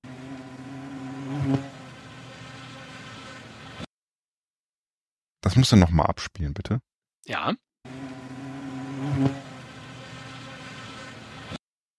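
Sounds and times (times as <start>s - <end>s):
bee buzzing near a flower: 0.0s - 3.7s, 7.9s - 11.5s
speech: 1.4s - 1.8s, 5.6s - 7.7s, 9.2s - 9.5s.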